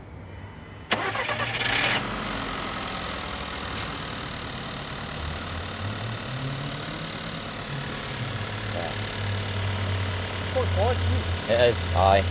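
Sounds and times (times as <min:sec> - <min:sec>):
engine mounted in a stand cranking and idling: 0:00.9 - 0:12.2
speech: 0:10.6 - 0:12.2.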